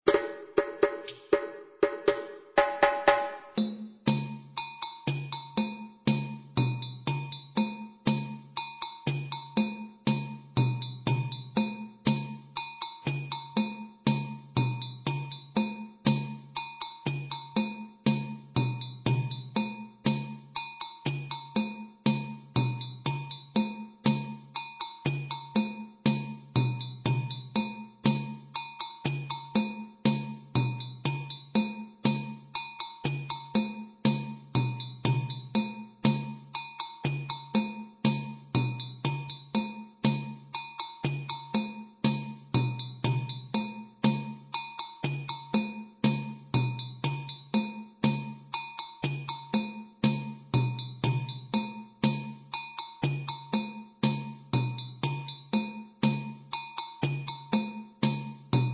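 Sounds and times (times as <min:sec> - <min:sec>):
slow dunun drum playing: 0:00.1 - 0:58.7.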